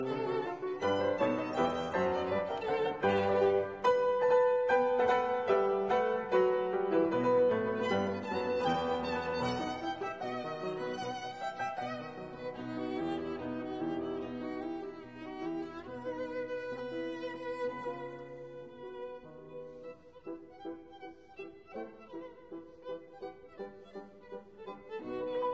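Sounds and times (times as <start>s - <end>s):
violin sonatina: 0.0s - 25.5s.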